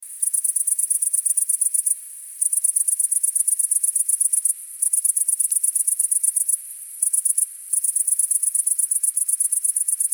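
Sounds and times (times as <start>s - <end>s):
great green bush-cricket: 0.0s - 10.1s.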